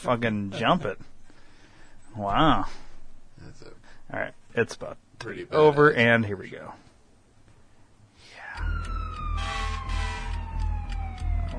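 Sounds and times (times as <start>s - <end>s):
speech: 0.0s - 1.1s, 2.1s - 2.8s, 3.4s - 6.8s
emergency vehicle siren wailing: 8.6s - 11.5s.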